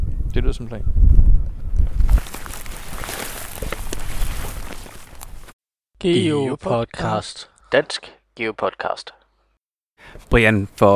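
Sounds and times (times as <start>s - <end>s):
wind buffeting a microphone outdoors: 0.0s - 5.4s
speech: 0.4s - 1.3s, 6.0s - 9.2s, 10.0s - 10.9s
faint rustling and scuffs: 2.0s - 5.6s.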